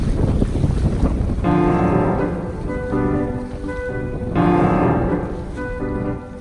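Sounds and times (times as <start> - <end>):
strong wind gusting on the microphone: 0.0 - 6.3
steady tonal music: 1.4 - 6.3.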